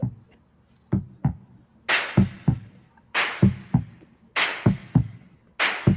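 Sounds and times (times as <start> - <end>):
looping music beat of paired low thumps: 0.0 - 5.9
hissy snare-like bursts: 1.9 - 2.6, 3.2 - 5.0, 5.6 - 5.9.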